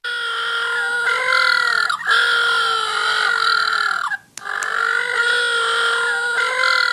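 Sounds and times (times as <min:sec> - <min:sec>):
little blue penguins calling: 0:00.0 - 0:06.9.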